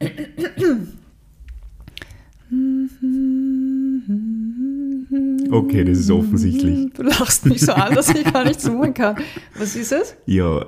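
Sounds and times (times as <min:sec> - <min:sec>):
person clearing throat roughly: 0:00.0 - 0:01.0
person humming notes of a song for a guessing game: 0:02.4 - 0:08.8
speech: 0:05.6 - 0:10.6
laughter: 0:07.0 - 0:09.8.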